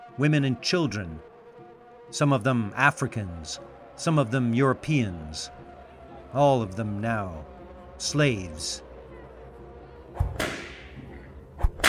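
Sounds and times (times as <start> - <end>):
speech: 0.2 - 1.3, 2.1 - 5.6, 6.3 - 8.8
whip cracks with a brief ringing tail: 10.2 - 11.0, 11.6 - 11.8.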